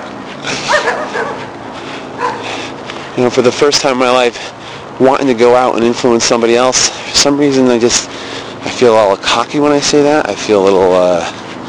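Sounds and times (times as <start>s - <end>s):
dogs barking: 0.5s - 2.7s
speech: 3.2s - 8.2s, 8.8s - 11.4s.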